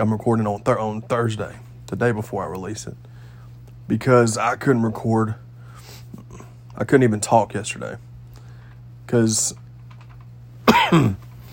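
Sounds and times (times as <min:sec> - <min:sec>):
speech: 0:00.0 - 0:03.1, 0:03.9 - 0:05.4, 0:06.8 - 0:08.1, 0:09.1 - 0:09.6, 0:10.9 - 0:11.3
low steady hum: 0:00.0 - 0:11.5
ill person coughing: 0:10.6 - 0:11.3.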